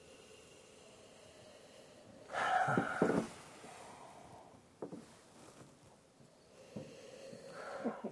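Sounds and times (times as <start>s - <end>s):
loud sniffing of an amber beer's aroma: 2.3s - 3.4s.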